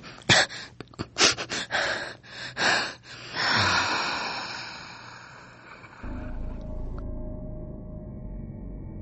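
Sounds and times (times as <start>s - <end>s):
teenage boy breathing heavily while lying on the floor: 0.0s - 6.0s
low steady hum: 6.0s - 9.0s.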